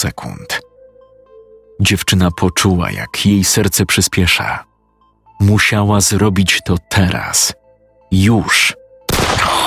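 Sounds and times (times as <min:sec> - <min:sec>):
speech: 0:00.0 - 0:00.3, 0:01.8 - 0:04.7, 0:05.4 - 0:08.8
pistol shot with long dense echo: 0:09.1 - 0:09.5.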